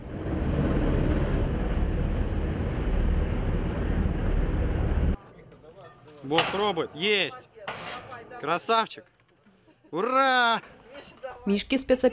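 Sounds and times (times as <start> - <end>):
helicopter engine and rotor roar carrying a suspended cage: 0.0 - 5.2
speech: 6.3 - 7.8, 8.4 - 9.2, 9.9 - 10.8, 11.4 - 12.1.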